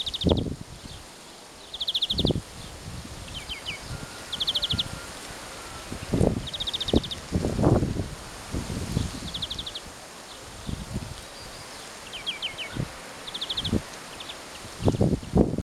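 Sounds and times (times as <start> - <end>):
European greenfinch Chloris chloris trilled calls: 0.0 - 1.0, 1.6 - 2.4, 3.3 - 5.0, 5.6 - 7.2, 9.2 - 9.9, 11.4 - 14.4
steady wind with heavy low gusts: 0.0 - 15.6.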